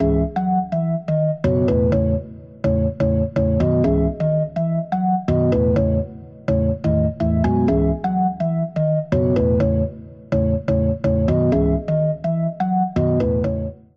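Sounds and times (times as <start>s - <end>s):
dry cab organ spread wide: 0.0s - 13.9s.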